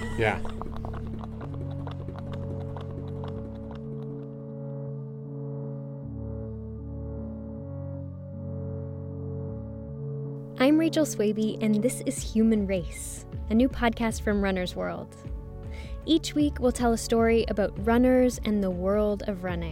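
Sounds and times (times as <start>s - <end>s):
racehorses galloping hoofbeats on a track: 0.0s - 4.5s
speech: 0.2s - 0.7s, 10.6s - 19.7s.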